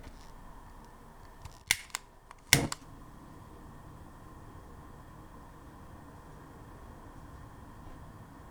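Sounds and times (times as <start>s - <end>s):
gas cooker: 0.0s - 8.5s.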